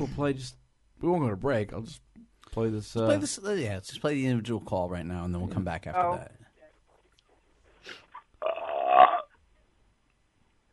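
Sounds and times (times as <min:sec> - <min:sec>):
speech: 0:00.0 - 0:06.4
long loud rumbling burp: 0:08.4 - 0:09.3.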